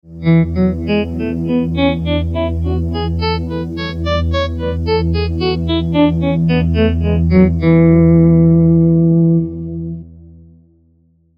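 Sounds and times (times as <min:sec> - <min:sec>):
E Mixolydian scale being played: 0:00.2 - 0:09.9.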